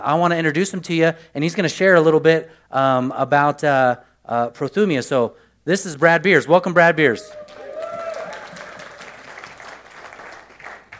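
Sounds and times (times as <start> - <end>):
speech: 0.0 - 7.6
crowd applauding: 7.3 - 10.9.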